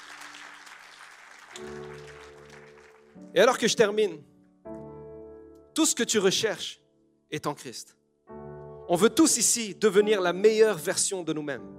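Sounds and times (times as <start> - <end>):
audience applause answering a preacher's call to clap: 0.0 - 3.2
speech: 3.3 - 4.3, 5.8 - 8.0, 8.9 - 11.7.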